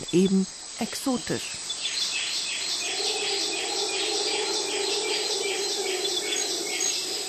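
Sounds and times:
dense Amazon rainforest bird chorus: 0:00.0 - 0:07.2
steady insect hum: 0:00.0 - 0:07.2
speech: 0:00.1 - 0:01.7.

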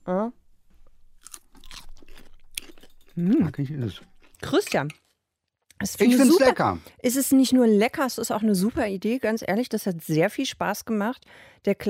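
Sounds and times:
crunching while tasting cucumber salad with a spicy dressing: 0:01.1 - 0:04.4
speech: 0:03.2 - 0:05.0, 0:05.8 - 0:11.8.

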